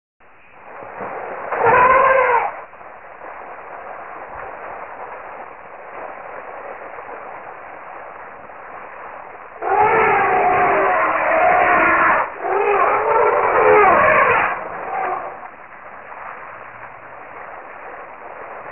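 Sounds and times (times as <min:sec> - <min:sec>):
elephant: 0:01.0 - 0:02.7, 0:09.6 - 0:15.5.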